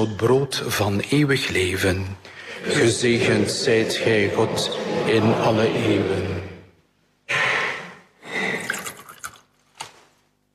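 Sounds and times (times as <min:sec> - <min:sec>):
speech: 0:00.0 - 0:06.5
laughter: 0:02.3 - 0:06.8
water trickling into wine in a chalice: 0:08.6 - 0:09.5.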